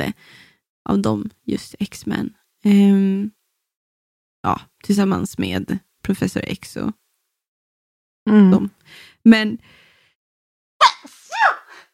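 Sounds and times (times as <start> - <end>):
speech: 0.0 - 3.4, 4.4 - 7.0, 8.2 - 9.8
sneeze: 10.8 - 11.7.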